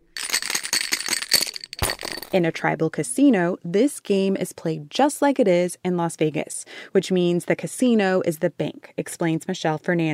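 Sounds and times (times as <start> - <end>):
dice rattling in a cup during a Pai Gow demonstration: 0.1 - 2.4
speech: 2.3 - 10.1.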